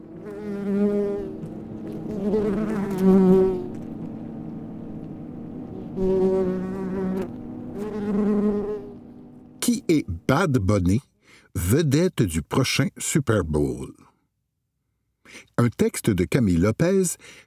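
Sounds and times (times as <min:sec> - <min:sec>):
wasp buzzing: 0:00.0 - 0:10.3
speech: 0:09.9 - 0:14.1, 0:15.3 - 0:17.4.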